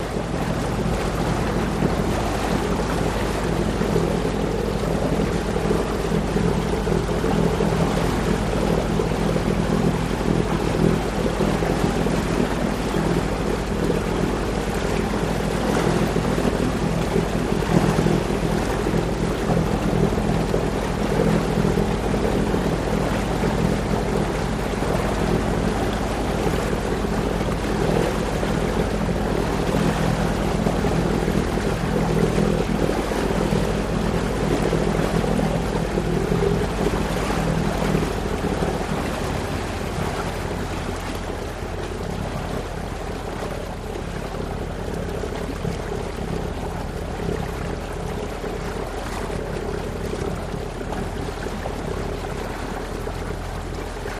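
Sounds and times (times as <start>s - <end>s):
gurgling boat exhaust: 0.0s - 54.1s.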